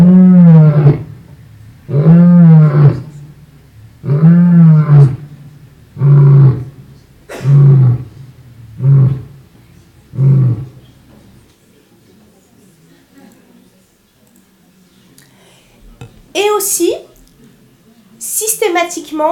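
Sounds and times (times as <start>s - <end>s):
lion roaring with loud drawn-out bellows: 0.0s - 10.9s.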